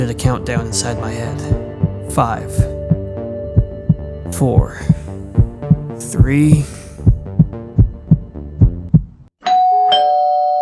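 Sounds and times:
speech: 0.0s - 2.7s, 4.3s - 5.0s, 6.0s - 6.8s
steady low heartbeat-like thumps: 0.2s - 9.3s
doorbell two-note ding-dong chime: 9.4s - 10.6s.

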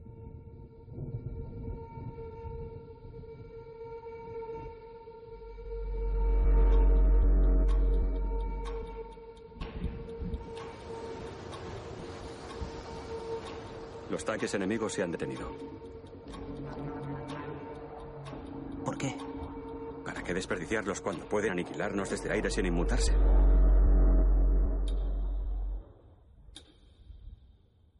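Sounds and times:
ominous cinematic drones of film trailer score: 0.1s - 26.0s
deep rumbling swell: 5.3s - 26.0s
broad hissing wash of noise: 10.4s - 15.8s
speech: 14.2s - 15.8s, 20.4s - 23.6s.

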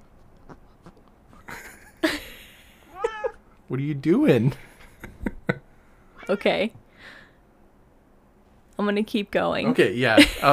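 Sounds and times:
female cat meowing next to the microphone: 2.9s - 3.4s, 6.2s - 6.7s
speech: 3.7s - 4.7s, 6.3s - 7.2s, 8.8s - 10.5s
laughter: 10.2s - 10.5s.

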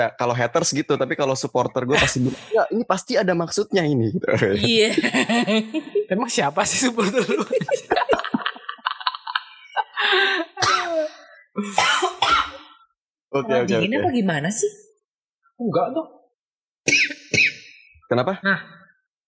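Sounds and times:
speech: 0.0s - 8.0s, 11.6s - 12.1s, 13.3s - 14.9s, 15.6s - 16.2s, 18.1s - 18.8s
laughter: 4.4s - 6.1s, 6.8s - 10.6s
coughing: 10.5s - 12.8s, 16.9s - 17.8s.

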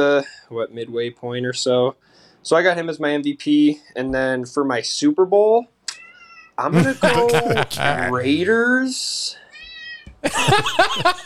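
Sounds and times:
speech: 0.0s - 5.7s, 6.6s - 9.4s, 10.2s - 11.2s
laughter: 6.7s - 8.6s, 10.2s - 11.2s
cat meowing loudly: 9.5s - 10.2s.

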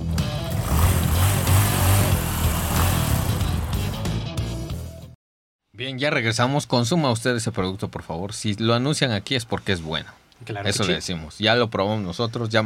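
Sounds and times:
ALB motorcycle engine revving: 0.2s - 4.3s
speech: 5.8s - 12.6s.

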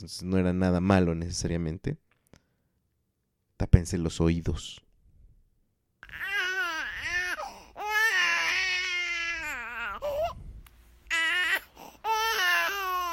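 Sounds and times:
speech: 0.0s - 2.0s, 3.6s - 4.9s
two-month-old baby crying: 6.0s - 10.4s, 11.1s - 13.1s.

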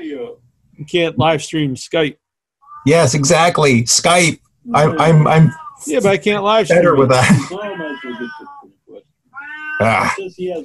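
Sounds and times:
speech: 0.1s - 2.2s, 2.8s - 8.5s, 9.8s - 10.6s
cat meowing: 4.7s - 6.1s, 7.5s - 8.7s, 9.3s - 10.2s.

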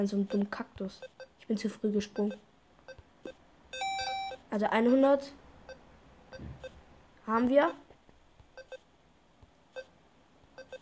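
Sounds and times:
short electronic video game beeps: 0.0s - 1.3s, 2.0s - 4.4s, 8.6s - 8.8s, 10.6s - 10.7s
speech: 0.0s - 2.5s, 4.5s - 5.4s, 7.3s - 7.8s
faint noisy room hum: 0.0s - 10.7s.

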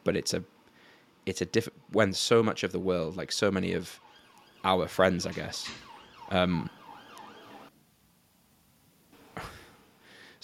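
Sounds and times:
speech: 0.0s - 0.6s, 1.2s - 4.0s, 4.6s - 6.8s
emergency vehicle siren passing outside: 3.9s - 7.7s.

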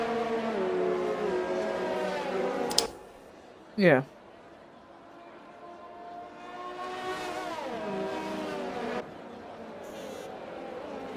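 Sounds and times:
car engines roaring past: 0.0s - 2.7s, 5.1s - 11.1s
speech: 3.8s - 4.2s.

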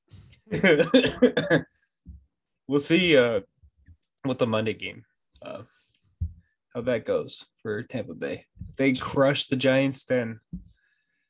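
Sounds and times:
person coughing: 0.5s - 1.7s
speech: 0.5s - 1.8s, 2.7s - 3.5s, 4.2s - 5.7s, 6.8s - 10.7s.

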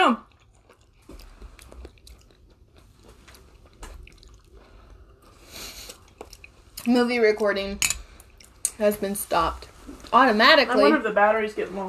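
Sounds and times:
speech: 0.1s - 0.3s, 6.8s - 7.9s, 8.8s - 11.8s
crunchy biting and chewing of a snack: 0.2s - 6.7s.

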